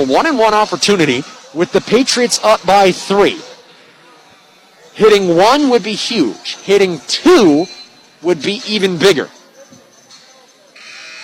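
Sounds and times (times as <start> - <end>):
speech: 0.0 - 3.5, 5.0 - 9.4
arena crowd noise: 0.0 - 11.2
basketball arena electronic buzzer blaring: 10.8 - 11.2.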